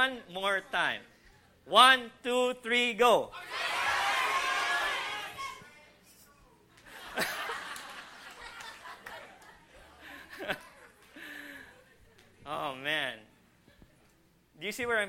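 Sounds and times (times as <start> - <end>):
speech: 0.0 - 3.7, 7.2 - 7.4, 12.5 - 13.2, 14.6 - 15.0
audience shouting at once: 3.3 - 5.6
laughter: 6.8 - 12.1.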